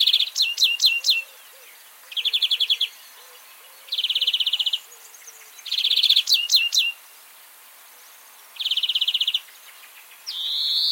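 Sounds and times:
European greenfinch Chloris chloris chirps and buzzy trills: 0.0s - 7.1s, 8.4s - 10.9s.

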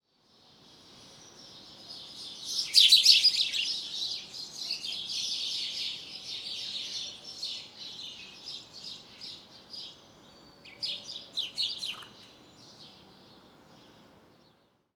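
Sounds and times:
house sparrow chirping: 1.0s - 13.0s.

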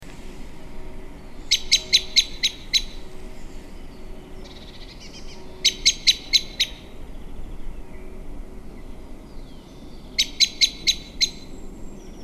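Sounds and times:
common blackbird chink calls: 1.4s - 7.0s, 10.2s - 12.2s.

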